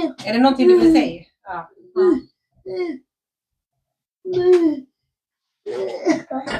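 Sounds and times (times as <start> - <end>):
speech: 0.0 - 3.1, 4.2 - 4.9, 5.6 - 6.5
young boy giving short throaty coughs: 5.7 - 6.5.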